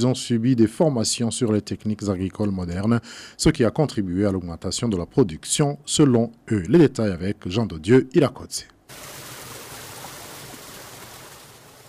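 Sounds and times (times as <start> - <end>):
speech: 0.0 - 9.1
river rushing at a small irrigation micro-dam site: 8.9 - 11.8.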